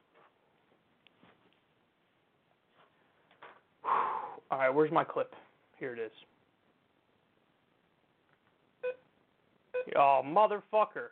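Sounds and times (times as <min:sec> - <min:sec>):
faint steady hiss: 0:00.0 - 0:11.1
speech: 0:04.6 - 0:06.4, 0:10.0 - 0:11.1
short loud electronic beeps from a touch-activated device: 0:08.8 - 0:09.1.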